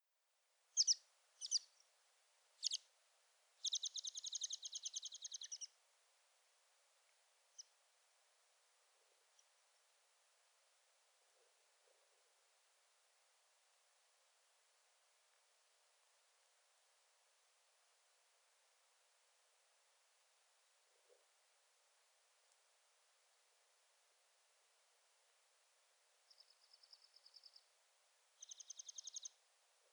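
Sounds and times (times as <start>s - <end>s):
American Pipit Anthus rubescens rubescens: 0.8s - 1.8s, 2.6s - 2.8s, 3.6s - 5.7s, 28.4s - 29.3s.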